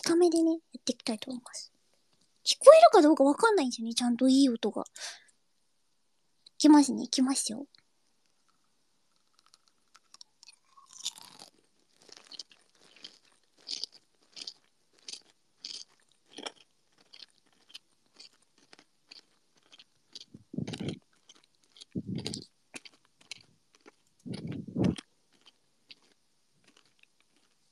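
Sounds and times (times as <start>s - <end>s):
speech: 0.0s - 1.8s, 2.4s - 5.2s, 6.6s - 7.8s
crunchy kohakuto crystal sugar candy being chewed: 8.2s - 27.6s.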